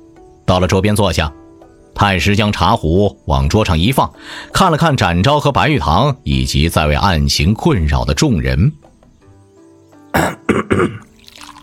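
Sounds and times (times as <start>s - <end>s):
speech: 0.5s - 1.4s, 2.0s - 8.9s, 10.2s - 11.0s
old man coughing and clearing his throat: 10.2s - 11.1s.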